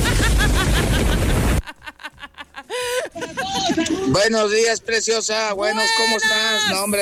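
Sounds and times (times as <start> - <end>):
sudden heavy rain downpour: 0.0 - 1.6
laughter: 0.0 - 4.5
speech: 4.1 - 7.0.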